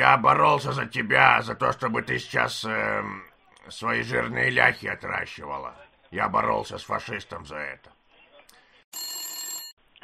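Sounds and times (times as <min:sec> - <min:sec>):
speech: 0:00.0 - 0:07.9, 0:08.9 - 0:09.2
telephone ringing with an incoming call: 0:08.9 - 0:09.8.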